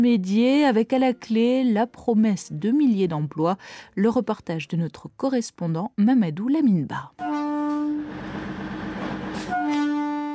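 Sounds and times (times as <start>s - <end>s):
speech: 0.0s - 7.4s
train horn of a small blue train entering a railway station in Dakar Senegal: 7.2s - 10.3s
rumble and clatter of a rolling train entering a railway station in Dakar: 7.7s - 10.3s.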